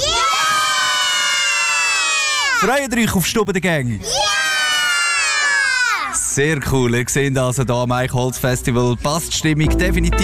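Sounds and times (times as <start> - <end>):
group of more than ten children at a festival shouting a reply together: 0.0 - 2.7, 4.0 - 6.3
speech: 2.6 - 4.2, 6.4 - 10.2.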